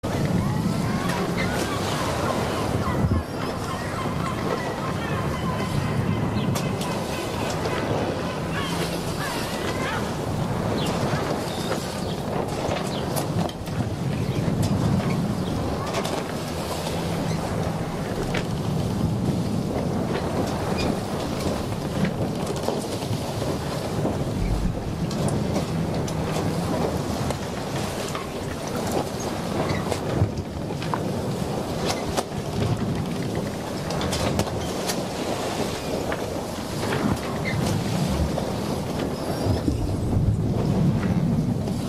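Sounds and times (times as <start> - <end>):
sailing ambience: 0.0 - 41.8.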